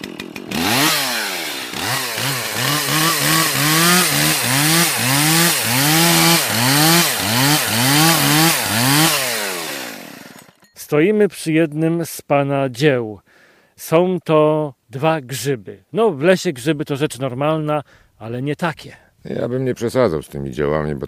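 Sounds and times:
chainsaw cutting wood: 0.0 - 10.7
speech: 10.9 - 21.0.

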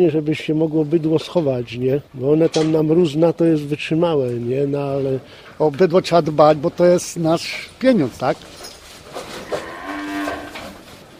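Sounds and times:
speech: 0.0 - 8.6
outdoor noise: 0.0 - 11.1
faint rustles: 8.2 - 11.1
cow mooing in a farm enclosure: 9.4 - 10.8.

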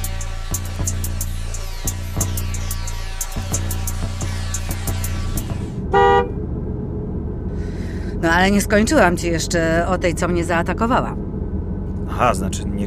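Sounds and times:
car engine humming: 0.0 - 12.8
car horn honk: 5.8 - 6.4
speech: 8.4 - 11.3, 12.2 - 12.8.

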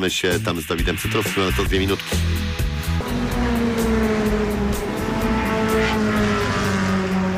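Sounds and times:
speech: 0.0 - 2.6
race car engines roaring on a racetrack: 1.8 - 7.3.

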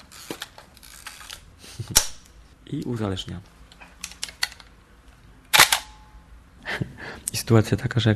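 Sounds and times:
speech: 1.8 - 2.1, 2.7 - 3.5, 7.5 - 8.1
1987 Hasselblad medium-format analog film camera shutter click: 5.5 - 6.0.

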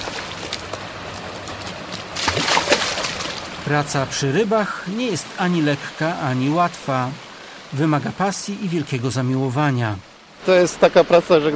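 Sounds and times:
pond aerator churning and oxygenating water: 0.0 - 4.2
speech: 3.7 - 11.5.

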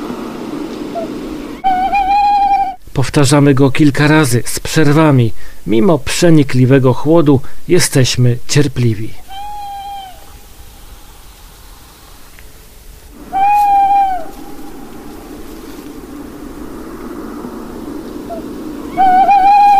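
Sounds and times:
low rumble of outdoor noise in piercing cold: 0.0 - 19.7
owl lure call played from a phone: 0.9 - 2.8, 9.2 - 10.4, 13.2 - 15.5, 18.2 - 19.7
speech: 3.0 - 9.5.

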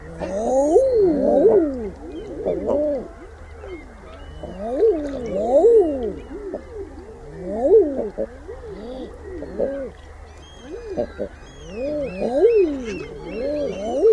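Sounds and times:
common eider chorus of crooning cooing calls: 0.0 - 14.1.

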